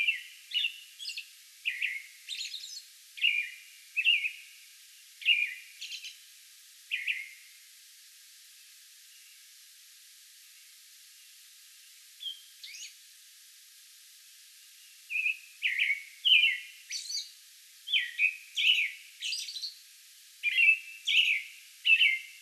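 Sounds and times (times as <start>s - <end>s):
American robin singing warbled caroling phrases: 0.0s - 4.4s, 5.2s - 6.2s, 6.9s - 7.4s, 12.2s - 13.0s, 15.1s - 19.8s, 20.4s - 22.4s.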